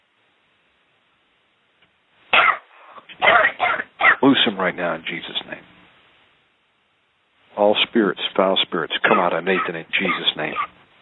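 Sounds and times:
deep harsh coughing: 2.4 - 4.2, 9.0 - 10.7
speech: 4.2 - 5.7, 7.6 - 11.0.

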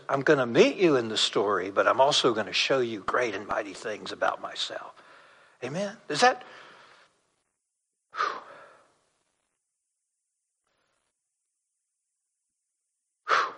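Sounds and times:
speech: 0.1 - 5.0, 5.6 - 6.6
person taking deep gasping inhalations: 8.1 - 9.0, 13.2 - 13.5.

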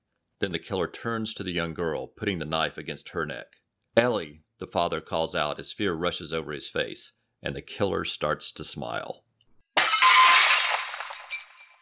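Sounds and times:
speech: 0.4 - 9.2
tinkle of glass shards: 9.8 - 11.7
window glass shattering: 9.8 - 11.7.

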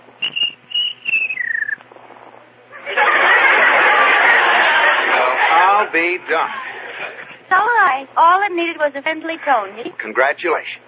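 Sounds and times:
cricket chirping: 0.2 - 1.8
laughter: 2.7 - 7.5
speech: 5.9 - 6.6, 8.0 - 10.8.

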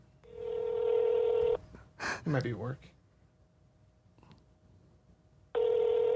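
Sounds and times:
telephone ring tone on speakerphone: 0.2 - 1.6, 5.6 - 6.1
speech: 2.3 - 3.0.

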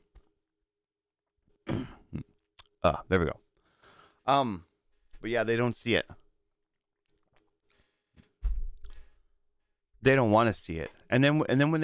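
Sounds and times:
loud harsh cough: 1.6 - 2.2
throat clearing: 1.6 - 2.3
speech: 2.8 - 3.4, 4.3 - 6.2, 10.0 - 11.8.

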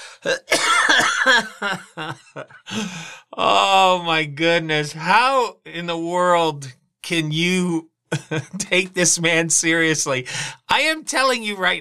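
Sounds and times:
speech: 0.2 - 11.7
coughing and throat clearing: 0.3 - 3.1
laughter: 0.5 - 4.2, 8.2 - 9.2.

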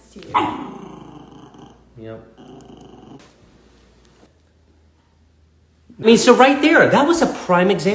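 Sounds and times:
speech: 0.2 - 0.8, 2.0 - 3.4, 6.0 - 7.9
dog growling: 0.3 - 3.2.

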